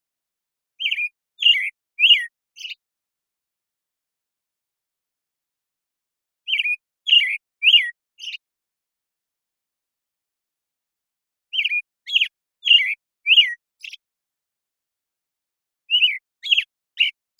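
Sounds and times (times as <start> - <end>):
American Robin morning song in the Pacific Northwest, Washington, United States: 0.6 - 3.0, 3.8 - 8.7, 10.8 - 17.3.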